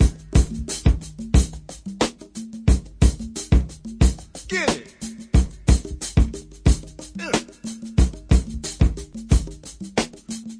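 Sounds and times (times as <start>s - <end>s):
90 bpm jungle drum loops and breaks: 0.0s - 10.5s
jungle vocal samples: 4.4s - 6.2s, 7.1s - 8.0s.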